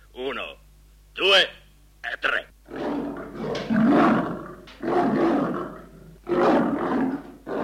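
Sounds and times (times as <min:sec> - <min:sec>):
lion roaring: 0:02.7 - 0:07.6.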